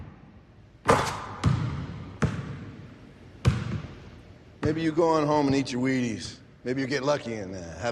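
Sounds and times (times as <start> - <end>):
basketball bouncing on a court after a three-point shot: 0.8 - 5.7
speech: 4.7 - 7.9.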